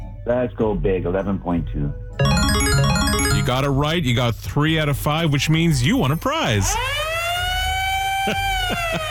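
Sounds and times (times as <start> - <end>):
speech: 0.3 - 2.3, 3.4 - 7.0, 8.3 - 9.0
siren sound effect wailing: 6.7 - 9.0
laughter: 8.2 - 9.0.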